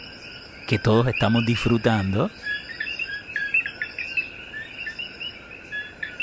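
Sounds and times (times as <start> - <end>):
coquí tree frogs chirping at night: 0.0 - 6.2
crickets trilling at night: 0.0 - 6.2
speech: 0.7 - 2.5.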